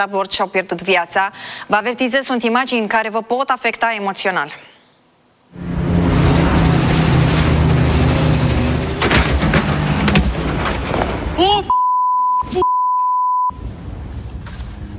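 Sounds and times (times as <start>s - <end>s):
speech: 0.0s - 4.7s
helicopter exploding in flight: 5.6s - 11.4s
steady high-pitched electronic beep tone: 11.7s - 13.6s.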